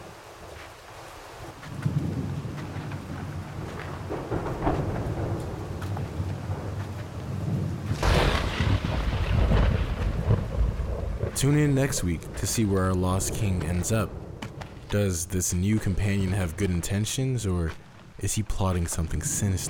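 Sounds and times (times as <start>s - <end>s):
heavy rain pouring: 0.0s - 19.6s
deep rumbling thunder: 1.7s - 14.9s
loud crash of thunder: 4.1s - 5.8s, 7.4s - 12.4s
speech: 11.4s - 14.2s, 14.9s - 19.6s.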